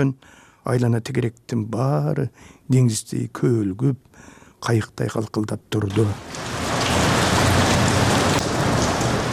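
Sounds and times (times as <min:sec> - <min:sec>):
speech: 0:00.0 - 0:06.6
heavy pouring rain: 0:05.9 - 0:09.3.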